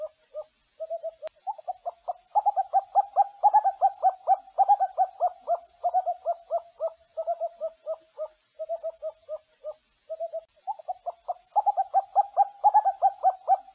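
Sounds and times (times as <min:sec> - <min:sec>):
owl hooting: 0:00.0 - 0:13.7.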